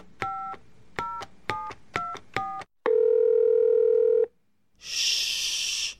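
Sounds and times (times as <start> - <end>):
long steady telephone tone: 2.8 - 4.4
loud hiss: 4.8 - 5.9.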